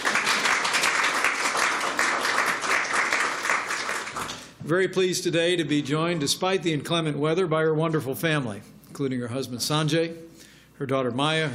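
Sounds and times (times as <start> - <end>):
crowd applauding: 0.0 - 4.5
speech: 4.7 - 11.5.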